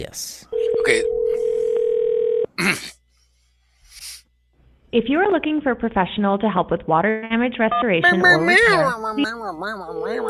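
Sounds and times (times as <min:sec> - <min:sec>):
speech: 0:00.0 - 0:01.2, 0:02.6 - 0:03.0, 0:04.9 - 0:10.2
telephone dial tone while calling a restoration company's number: 0:00.6 - 0:02.5.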